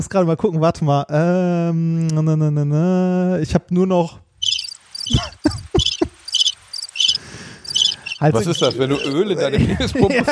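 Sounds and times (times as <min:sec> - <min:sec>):
speech: 0:00.0 - 0:04.2, 0:08.2 - 0:10.3
crickets chirping: 0:04.4 - 0:09.3
laughter: 0:05.1 - 0:06.2, 0:08.3 - 0:10.3.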